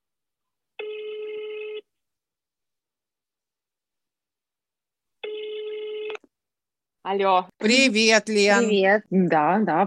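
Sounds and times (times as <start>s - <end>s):
phone ringback tone for a call to Estonia: 0.8s - 1.9s, 5.2s - 6.2s
speech: 7.1s - 9.8s.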